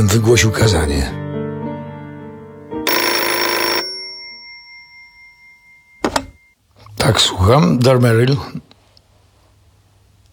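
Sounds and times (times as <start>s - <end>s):
speech: 0.0s - 1.2s, 7.1s - 8.7s
old-fashioned telephone bell ringing: 2.9s - 6.5s.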